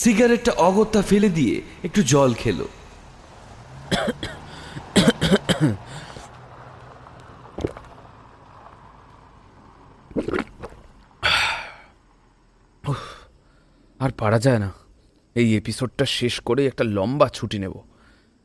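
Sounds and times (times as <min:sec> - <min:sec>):
speech: 0:00.0 - 0:02.8, 0:03.9 - 0:04.4, 0:14.0 - 0:14.8, 0:15.4 - 0:17.9
smoker coughing: 0:03.9 - 0:05.9
ragged breath: 0:04.3 - 0:05.0, 0:05.9 - 0:06.4.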